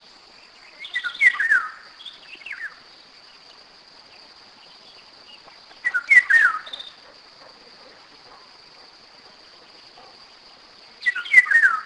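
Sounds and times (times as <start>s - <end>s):
Eurasian golden oriole fluting whistled song: 0.8s - 2.8s, 5.8s - 7.0s, 11.0s - 11.8s.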